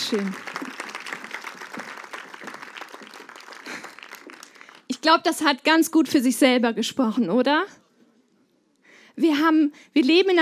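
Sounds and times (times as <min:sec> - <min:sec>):
audience applause for a woman who has just performed: 0:00.0 - 0:05.0
speech: 0:00.1 - 0:00.5, 0:05.0 - 0:07.8, 0:09.2 - 0:10.3.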